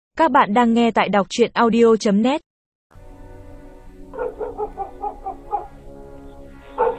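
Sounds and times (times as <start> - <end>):
speech: 0.2 - 2.5
dog barking with short yelping barks: 4.2 - 5.8, 6.7 - 6.9.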